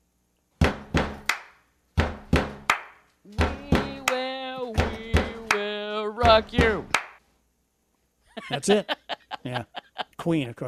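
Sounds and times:
drum beat rhythm knocked out by hand by a drummer: 0.6s - 1.3s, 2.0s - 7.0s
speech: 6.2s - 7.0s, 8.5s - 10.6s
laughter: 8.3s - 10.3s.

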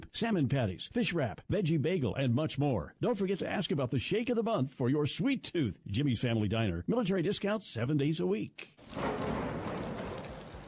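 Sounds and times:
speech: 0.2s - 9.3s
steady dense spring rainfall: 8.8s - 10.6s.

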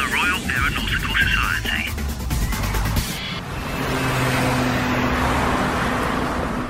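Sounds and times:
street traffic rumbling at a bus stop: 0.0s - 6.6s
car passing: 2.2s - 6.6s.

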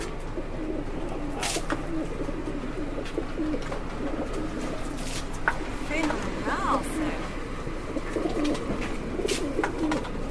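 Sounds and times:
racing pigeons cooing: 0.0s - 10.2s
faint voices: 0.6s - 3.0s, 4.5s - 7.8s
pigeon wings fluttering: 1.2s - 6.9s, 7.9s - 10.2s.

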